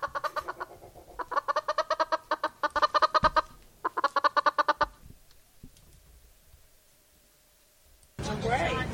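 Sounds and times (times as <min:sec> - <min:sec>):
chicken clucking: 0:00.0 - 0:05.0.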